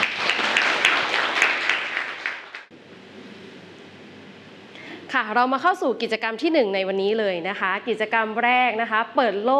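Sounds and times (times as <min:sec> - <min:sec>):
group of students clapping for a classmate: 0:00.0 - 0:02.7
speech: 0:05.2 - 0:09.5.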